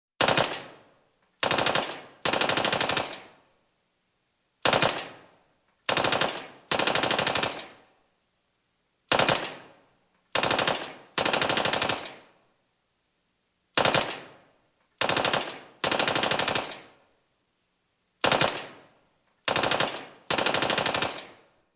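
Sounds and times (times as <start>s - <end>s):
machine gun firing: 0.2s - 0.8s, 1.4s - 3.3s, 4.6s - 5.2s, 5.9s - 7.8s, 9.1s - 9.7s, 10.4s - 12.2s, 13.8s - 14.4s, 15.0s - 16.9s, 18.2s - 18.8s, 19.5s - 21.4s.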